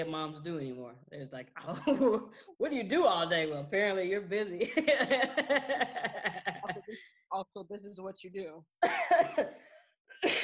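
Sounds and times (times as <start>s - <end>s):
speech: 0.0s - 10.4s
laughter: 4.6s - 7.0s
person coughing: 8.8s - 9.6s.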